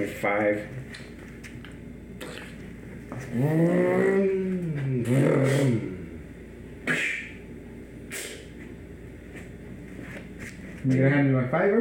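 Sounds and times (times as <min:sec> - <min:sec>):
speech: 0:00.0 - 0:01.1, 0:03.1 - 0:05.9, 0:10.8 - 0:11.7
voice imitating a car engine revving: 0:03.3 - 0:06.2.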